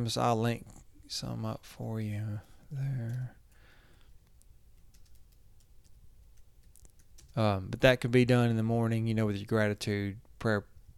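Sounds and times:
speech: 0.0s - 3.4s, 7.4s - 10.9s
low hum: 0.0s - 10.9s
typing on a keyboard: 4.7s - 7.5s.

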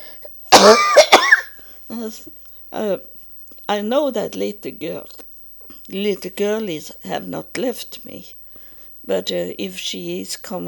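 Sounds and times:
person coughing: 0.6s - 1.6s
speech: 1.9s - 5.2s, 5.9s - 8.4s, 9.0s - 10.6s.

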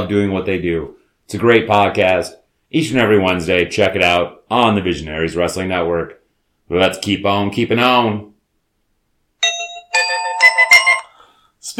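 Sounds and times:
speech: 0.0s - 8.3s
bell ringing: 9.4s - 11.3s.

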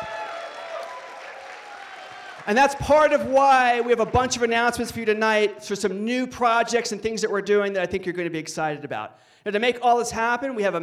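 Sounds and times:
crowd applauding: 0.0s - 4.7s
speech: 2.4s - 10.8s.

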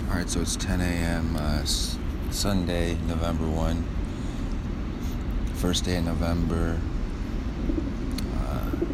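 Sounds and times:
constant outdoor rumble: 0.0s - 8.9s
speech: 0.2s - 4.0s, 5.6s - 7.0s
pigeons cooing on a balcony: 7.6s - 8.9s.

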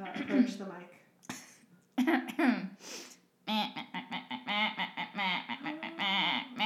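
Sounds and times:
speech: 0.2s - 0.8s
person imitating a duck muttering with nasal quacking murmurs: 3.5s - 6.6s.

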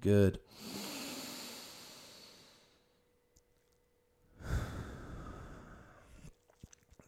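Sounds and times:
deep breath in: 0.5s - 2.9s, 4.3s - 6.3s.

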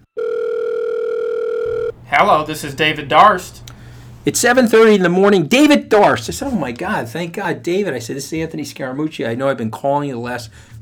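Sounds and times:
telephone dial tone while placing a call: 0.0s - 2.0s
speech: 2.2s - 10.7s.

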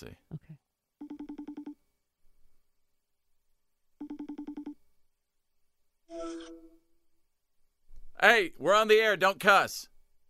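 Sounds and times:
speech: 0.0s - 0.4s, 6.1s - 6.8s, 8.2s - 9.9s
FaceTime video call ringtone: 1.0s - 1.8s, 4.0s - 4.8s, 6.1s - 6.9s.

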